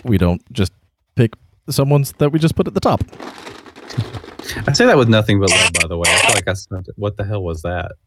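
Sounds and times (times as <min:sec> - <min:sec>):
speech: 0:00.0 - 0:08.0
slips of paper shaken inside a skull: 0:03.1 - 0:06.4.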